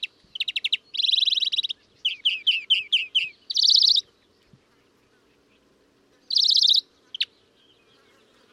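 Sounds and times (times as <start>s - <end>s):
European greenfinch twittering: 0.0s - 4.3s, 6.2s - 8.2s.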